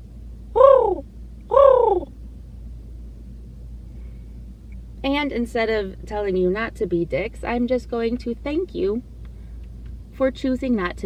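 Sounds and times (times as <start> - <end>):
faint low hum: 0.0 - 11.0
human voice imitating a pigeon cooing: 0.6 - 2.1
speech: 5.1 - 9.1, 10.2 - 11.0.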